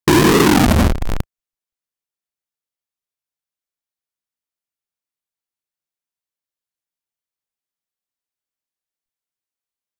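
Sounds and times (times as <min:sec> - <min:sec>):
8-bit sound: 0:00.0 - 0:01.2.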